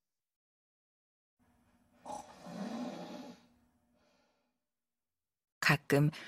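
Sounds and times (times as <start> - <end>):
loud rasping snore from a passenger on a moving bus: 2.0 - 3.5
speech: 5.9 - 6.2.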